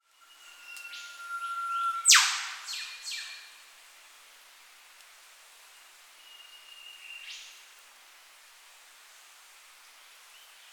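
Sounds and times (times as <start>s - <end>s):
Eastern whipbird whip call in tropical setting: 0.5s - 3.4s.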